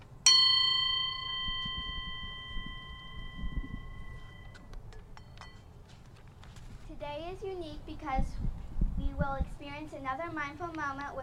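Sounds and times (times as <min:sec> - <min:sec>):
mindfulness bell struck and ringing: 0:00.3 - 0:05.7
speech: 0:07.1 - 0:08.5, 0:09.2 - 0:11.2.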